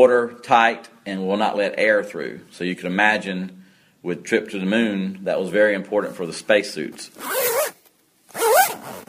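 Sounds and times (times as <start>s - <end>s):
speech: 0.0s - 7.5s
zipper being zipped up: 7.2s - 9.0s.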